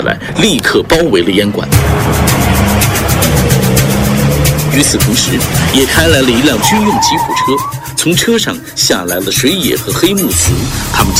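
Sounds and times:
speech: 0.0s - 2.4s, 4.7s - 11.1s
several Japanese motorcycles carrying soldiers pulling up outside an opium den: 1.7s - 8.2s.

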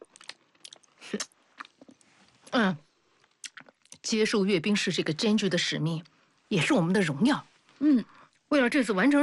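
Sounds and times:
person chewing and crunching on jujube dates: 0.0s - 2.1s, 3.2s - 4.0s
speech: 1.1s - 1.3s, 2.6s - 2.8s, 4.1s - 9.2s.

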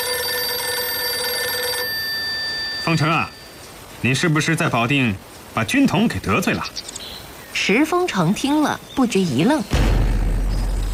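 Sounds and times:
telephone ringing: 0.0s - 3.6s
speech: 2.9s - 3.4s, 4.0s - 7.0s, 7.6s - 9.8s.

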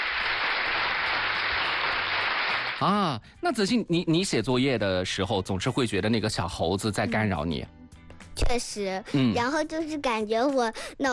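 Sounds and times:
audience applauding for a student: 0.0s - 2.9s
speech: 2.8s - 7.8s, 8.5s - 11.1s.

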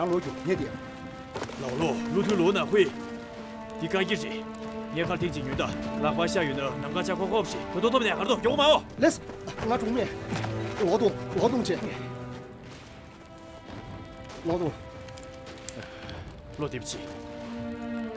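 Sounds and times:
speech: 0.0s - 1.0s, 1.6s - 3.1s, 3.8s - 12.2s, 14.4s - 14.8s, 16.6s - 17.2s
rain pattering on hard surfaces: 0.0s - 18.1s.

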